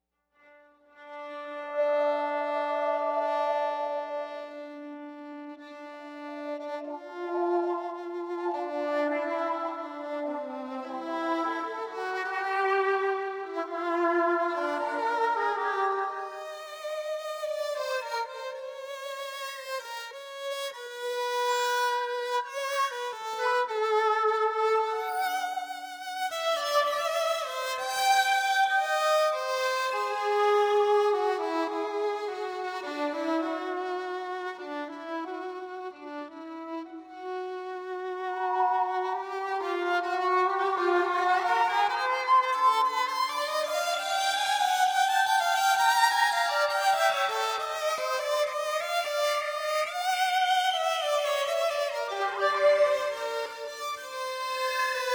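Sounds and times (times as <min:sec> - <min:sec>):
hyperviolin: 0:00.0 - 0:55.1.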